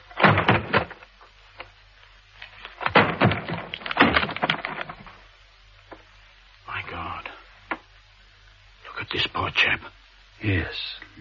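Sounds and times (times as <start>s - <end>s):
wooden door being broken down: 0.0s - 1.1s, 2.8s - 5.1s
speech: 9.5s - 11.2s.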